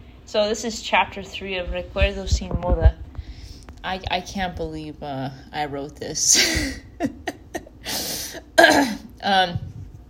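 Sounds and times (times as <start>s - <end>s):
speech: 0.3s - 3.0s, 3.8s - 7.3s, 9.2s - 9.6s
person clearing throat: 8.6s - 9.1s.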